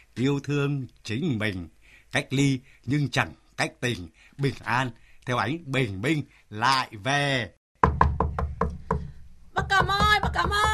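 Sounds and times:
speech: 0.2s - 7.6s
knocking on a door: 7.8s - 10.7s.

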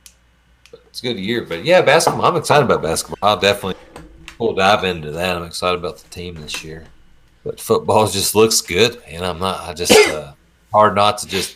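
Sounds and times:
speech: 1.0s - 11.5s
person sneezing: 9.9s - 10.2s.

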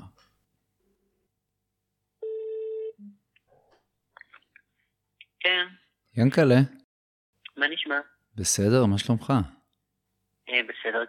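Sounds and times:
telephone dialing tone: 2.2s - 3.0s
speech: 5.4s - 6.8s, 7.6s - 9.6s, 10.5s - 11.0s.

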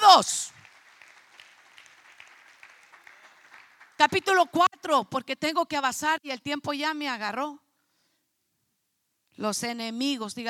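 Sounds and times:
speech: 0.2s - 0.4s, 4.0s - 7.6s, 9.4s - 10.4s
congregation applauding: 0.4s - 4.4s.

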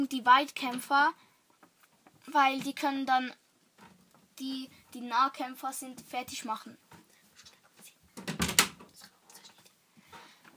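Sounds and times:
speech: 0.0s - 1.3s, 2.3s - 3.4s, 4.4s - 6.9s
door banging shut with a brief rattle: 8.2s - 8.8s.

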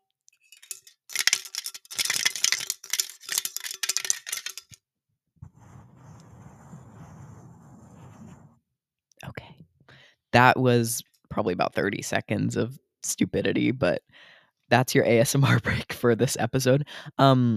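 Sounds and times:
ripped-off can tab jingling around inside a can: 0.4s - 4.8s
quiet steady low rustle: 5.4s - 8.6s
speech: 10.4s - 17.5s.

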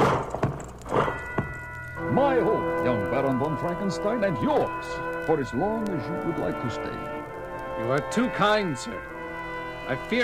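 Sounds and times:
horse hooves clip-clopping in a slow uneven walk: 0.0s - 10.2s
speech: 3.2s - 7.1s, 7.8s - 9.1s, 9.9s - 10.2s.

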